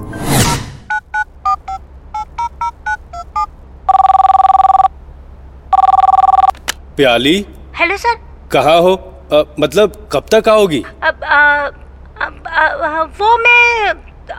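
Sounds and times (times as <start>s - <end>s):
quick whoosh: 0.0s - 0.9s
long steady ringback tones of an outgoing phone call: 0.0s - 5.0s, 5.7s - 6.5s
short keypad beeps of a number being dialed: 0.2s - 4.9s
speech: 7.0s - 11.8s, 12.9s - 14.0s.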